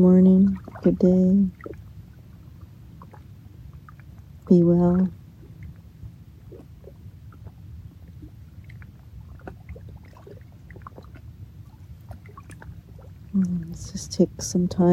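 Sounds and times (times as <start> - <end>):
speech: 0.0 - 1.6, 4.5 - 5.2, 13.4 - 14.9
small splashes and gurgles of lake water: 0.4 - 4.4, 5.1 - 13.6
lake water lapping against rock: 0.5 - 4.2, 5.4 - 13.3.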